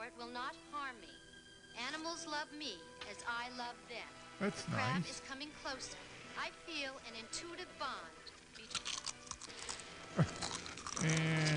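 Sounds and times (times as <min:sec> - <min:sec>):
speech: 0:00.0 - 0:08.9, 0:11.0 - 0:11.5
crunching movie sound effect: 0:08.3 - 0:11.5.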